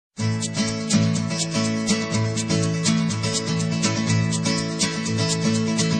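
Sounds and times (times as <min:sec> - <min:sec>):
Mexican guitar playing: 0:00.2 - 0:05.9.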